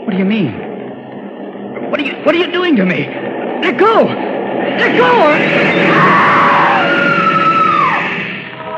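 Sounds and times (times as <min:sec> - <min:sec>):
speech: 0:00.1 - 0:00.7, 0:01.9 - 0:06.4
woman screaming on a station platform: 0:05.9 - 0:08.1.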